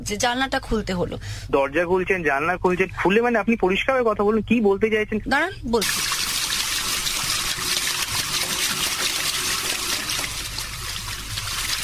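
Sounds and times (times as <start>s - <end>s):
speech: 0.0s - 6.1s
shower water running: 5.8s - 11.8s.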